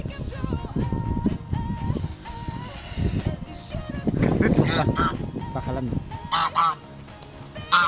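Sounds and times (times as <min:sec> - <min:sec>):
rough noisy background: 0:00.0 - 0:07.8
duck quacking: 0:04.6 - 0:05.2, 0:06.3 - 0:06.8, 0:07.7 - 0:07.8
speech: 0:04.8 - 0:06.8.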